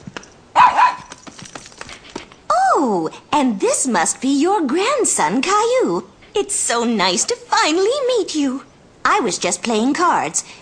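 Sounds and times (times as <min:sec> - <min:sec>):
puppy barking: 0:00.6 - 0:01.2
speech: 0:02.8 - 0:10.6.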